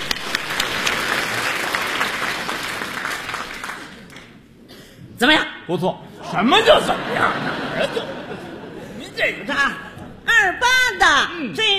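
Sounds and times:
audience applause at a live stage performance: 0.0s - 4.4s
speech: 5.2s - 8.2s, 9.2s - 9.8s, 10.4s - 11.7s
laughter: 6.2s - 10.2s.

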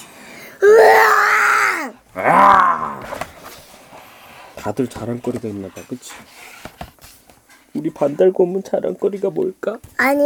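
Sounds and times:
person imitating a lion's roar with growling bursts: 0.6s - 3.2s
speech: 4.6s - 6.6s, 7.8s - 10.2s.

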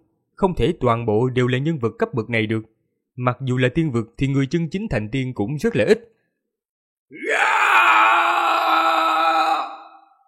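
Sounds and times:
speech: 0.4s - 6.2s, 7.1s - 7.5s
man's loud roar as a battle cry while charging an enemy: 7.1s - 10.2s.

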